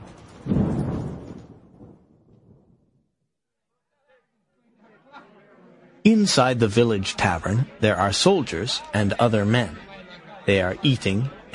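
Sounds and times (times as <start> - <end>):
loud thunder rumbling: 0.0 - 3.0
faint indistinct murmuring: 4.0 - 11.5
speech: 6.1 - 9.8, 10.4 - 11.5.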